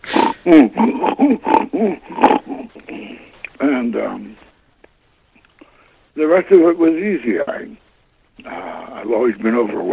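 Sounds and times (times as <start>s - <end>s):
man imitating a pig with a grunting, snorting laugh: 0.1s - 3.2s
speech: 0.4s - 3.1s, 3.8s - 4.4s, 6.2s - 7.8s, 8.4s - 9.9s.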